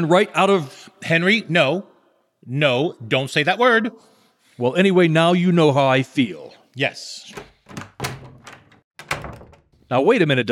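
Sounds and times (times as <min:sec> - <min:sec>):
speech: 0:00.0 - 0:07.9, 0:09.9 - 0:10.5
door latch clicking: 0:07.3 - 0:09.8.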